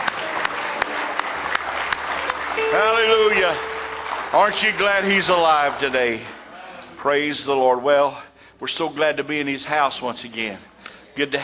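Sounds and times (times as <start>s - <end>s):
church congregation clapping hands in praise: 0.0s - 6.4s
speech: 2.7s - 3.7s, 4.3s - 6.3s, 7.0s - 11.4s.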